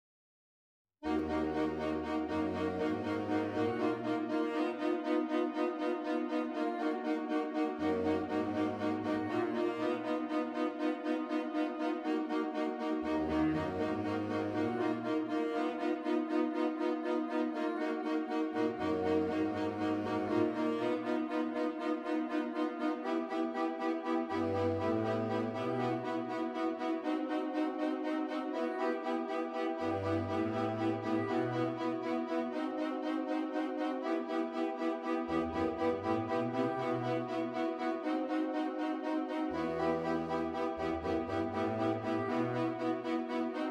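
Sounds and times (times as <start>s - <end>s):
MIDI saxophone quartet music: 1.0s - 43.6s.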